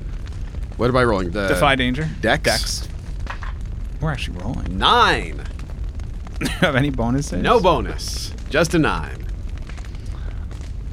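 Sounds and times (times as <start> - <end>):
deep rumbling explosion: 0.0 - 10.9
speech: 0.8 - 2.9, 4.0 - 5.5, 6.4 - 9.3.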